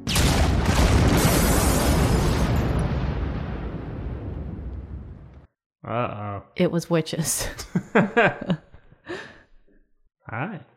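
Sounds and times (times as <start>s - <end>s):
loud explosion: 0.0s - 5.5s
speech: 5.9s - 9.3s, 10.3s - 10.7s
laughter: 7.6s - 9.3s.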